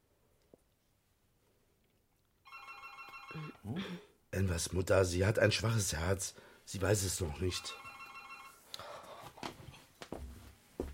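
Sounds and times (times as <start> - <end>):
home telephone ringing with a steady electronic ring: 2.5 - 3.6, 7.3 - 8.6
speech: 3.3 - 7.8.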